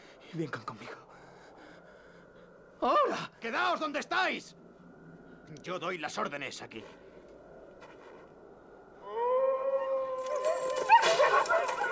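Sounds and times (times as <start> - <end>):
speech: 0.3 - 1.2, 2.8 - 4.6, 5.5 - 7.0
several dogs howling: 9.0 - 11.9
dogs yelping: 9.9 - 11.9.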